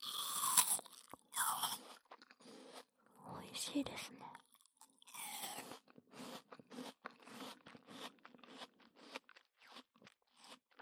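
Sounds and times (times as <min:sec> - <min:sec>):
biting and chewing a crisp apple: 0:00.0 - 0:03.2, 0:04.3 - 0:10.8
speech: 0:03.7 - 0:04.4.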